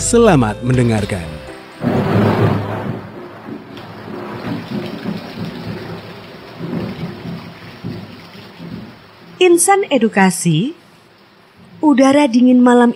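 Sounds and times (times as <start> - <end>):
speech: 0.1 - 1.4, 9.4 - 10.8, 11.8 - 12.9
heavy rain: 1.6 - 11.9.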